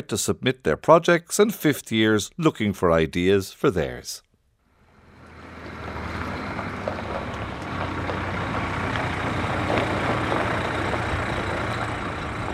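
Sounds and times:
speech: 0.0 - 4.3
buses pulling up in a farmyard in Offaly: 4.7 - 12.5.

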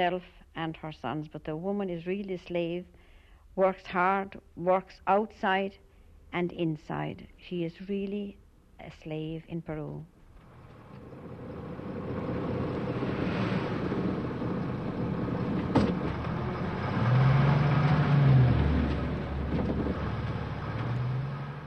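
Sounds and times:
speech: 0.0 - 3.0, 3.6 - 10.2
steady wind: 4.4 - 21.6
early-morning bus passing a house: 10.3 - 21.6.

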